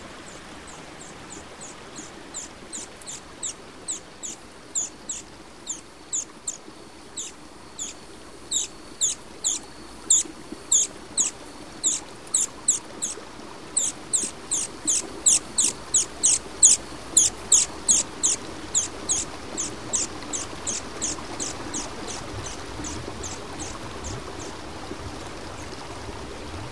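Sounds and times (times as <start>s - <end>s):
steady low rustling hiss in a tree canopy: 0.0s - 26.7s
rapid high chirps in a tree canopy in Serra da Bocaina: 2.4s - 13.2s, 13.8s - 23.8s.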